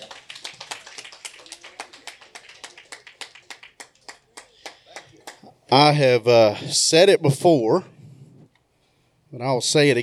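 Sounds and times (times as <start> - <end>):
small group applauding with crisp handclaps: 0.0 - 5.6
speech: 5.7 - 8.0, 9.4 - 10.0.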